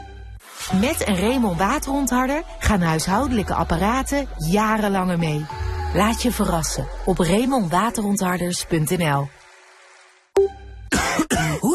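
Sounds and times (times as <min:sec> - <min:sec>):
speech: 0:00.7 - 0:09.4
harsh raspy coughs: 0:10.9 - 0:11.7
sharp throat clearing: 0:10.9 - 0:11.7.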